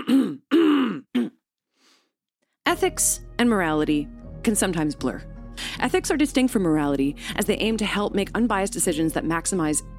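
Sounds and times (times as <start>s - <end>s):
person clearing their throat: 0.0s - 1.4s
speech: 2.7s - 9.9s.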